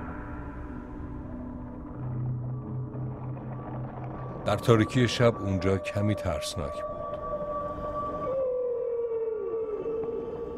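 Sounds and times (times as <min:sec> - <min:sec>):
dull rumbling underwater background: 0:00.0 - 0:08.2
speech: 0:04.5 - 0:06.9
humpback whale moan underwater: 0:06.9 - 0:10.5.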